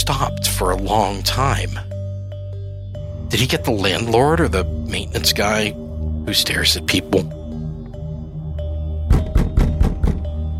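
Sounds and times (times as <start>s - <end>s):
speech: 0.0s - 1.9s, 3.3s - 7.4s
banging on a front door: 9.1s - 10.4s.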